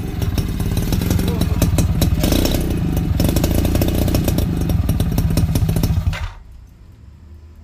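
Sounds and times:
old motorcycle engine starting and idling: 0.0s - 6.4s.

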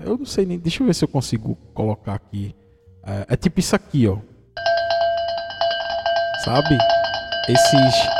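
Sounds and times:
speech: 0.1s - 4.3s, 6.4s - 8.1s
metallic cowbells clanging: 4.6s - 8.1s.

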